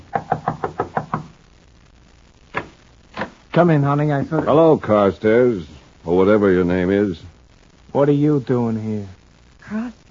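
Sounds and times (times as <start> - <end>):
firm knocking on a door: 0.1 - 1.3
speech: 3.6 - 7.3, 7.9 - 10.0.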